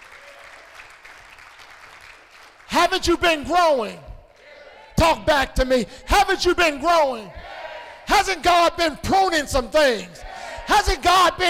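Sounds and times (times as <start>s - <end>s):
audience clapping hands in church: 0.0s - 3.0s
speech: 2.9s - 4.0s, 5.0s - 11.4s.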